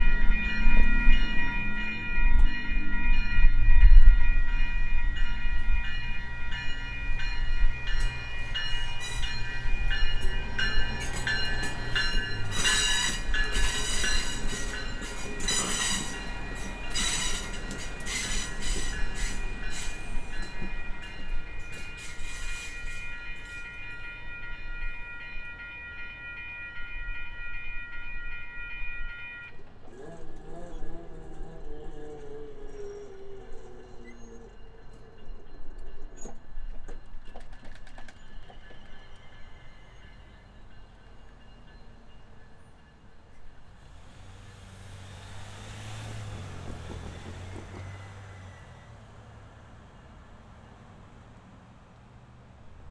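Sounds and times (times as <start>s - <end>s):
train in Santa Rosa: 0.0s - 52.8s.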